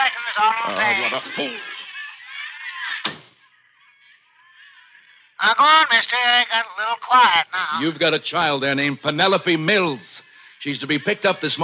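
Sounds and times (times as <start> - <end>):
laughter: 0.0 - 3.1
speech: 0.1 - 1.7, 5.4 - 11.6
door swinging shut: 3.0 - 3.4.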